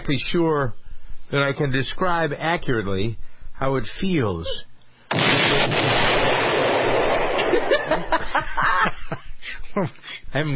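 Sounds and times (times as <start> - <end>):
speech: 0.1 - 4.7, 7.9 - 10.5
rumbling crackling explosion debris: 5.1 - 7.8
explosion sound effect: 5.1 - 8.1
laughter: 7.4 - 10.2.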